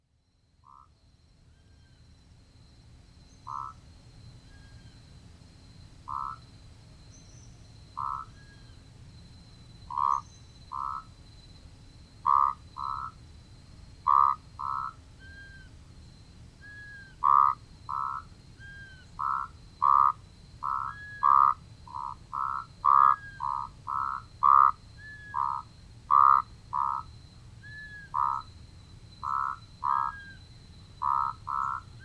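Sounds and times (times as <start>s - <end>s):
Proceratophrys moratoi calling: 0.6s - 1.0s, 3.4s - 3.8s, 6.0s - 6.5s, 7.9s - 8.8s, 9.8s - 11.2s, 12.2s - 13.2s, 14.0s - 15.8s, 16.6s - 32.0s.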